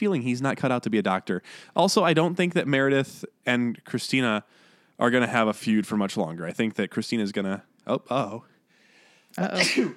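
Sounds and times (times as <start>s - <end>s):
speech: 0.0s - 8.5s, 9.3s - 9.9s
sneeze: 9.4s - 9.9s.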